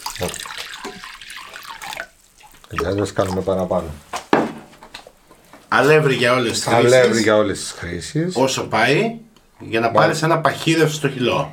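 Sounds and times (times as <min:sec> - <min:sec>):
lukewarm water pouring for a flour batter in a kitchen: 0:00.0 - 0:04.0
speech: 0:00.2 - 0:00.5, 0:02.7 - 0:04.1, 0:05.7 - 0:11.5.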